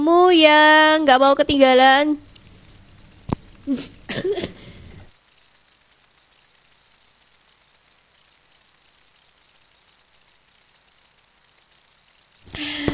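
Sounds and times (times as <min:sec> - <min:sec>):
speech: 0:00.0 - 0:02.2, 0:03.7 - 0:04.5
person with a cold coughing: 0:03.7 - 0:04.9.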